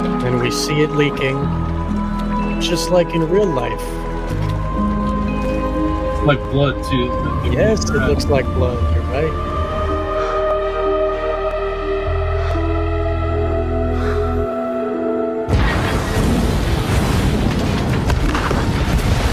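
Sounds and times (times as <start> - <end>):
tense droning music score with deep bass: 0.0 - 18.2
speech: 0.4 - 1.7, 2.6 - 4.9, 6.2 - 9.6
movie explosion boom with roaring rumble: 15.5 - 19.3.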